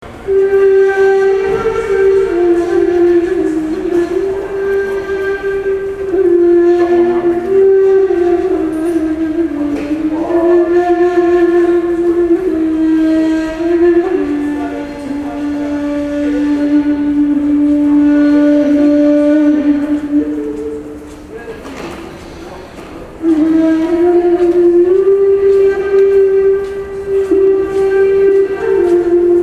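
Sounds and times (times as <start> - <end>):
metro ambience: 0.0 - 29.4
musician playing a ney flute in the metro: 0.0 - 29.4.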